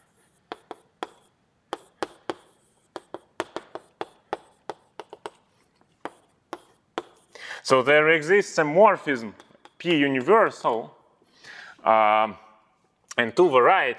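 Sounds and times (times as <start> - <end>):
writing on a board: 0.0 - 7.4, 9.4 - 10.7
speech: 7.6 - 11.0, 11.8 - 12.4, 13.2 - 13.9.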